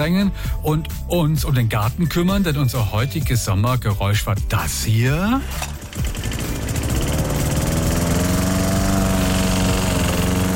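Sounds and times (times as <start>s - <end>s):
speech: 0.0s - 5.8s
lawn mower engine starting and running: 4.9s - 10.5s.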